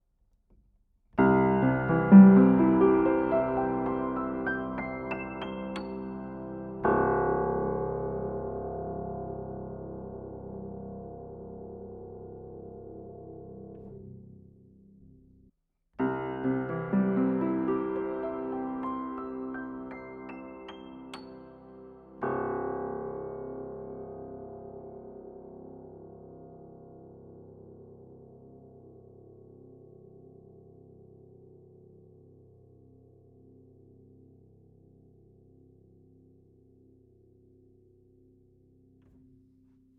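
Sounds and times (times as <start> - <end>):
piano with closed and open lid: 1.2 - 14.4, 16.0 - 26.3.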